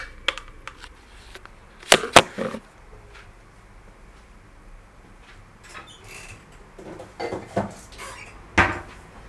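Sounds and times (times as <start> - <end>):
pumping lidded pot holding oil: 1.8 - 2.6.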